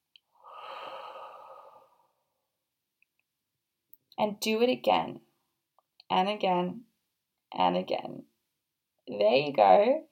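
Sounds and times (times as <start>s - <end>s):
deep breath in and out as part of a relaxation exercise: 0.3s - 2.5s
speech: 4.2s - 5.3s, 6.1s - 6.9s, 7.5s - 8.3s, 9.1s - 10.1s.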